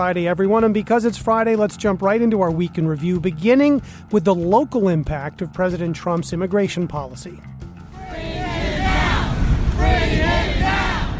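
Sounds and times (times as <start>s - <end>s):
speech: 0.0s - 8.4s
crowd of protesters chanting outside city hall: 7.9s - 11.1s
steady rumble of crowd noise: 7.9s - 11.1s.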